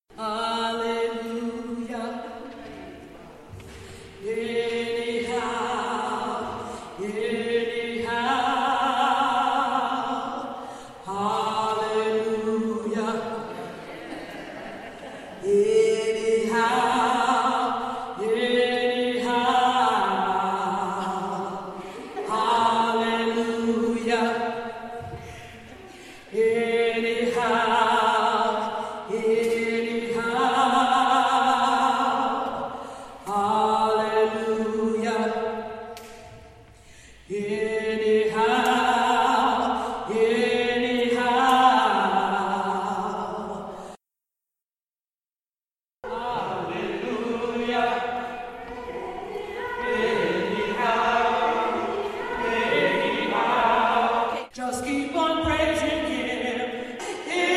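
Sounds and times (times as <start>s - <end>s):
tenor singing: 0.1s - 36.6s, 37.2s - 43.8s, 46.0s - 57.5s
laughter: 13.4s - 15.7s, 21.8s - 22.7s.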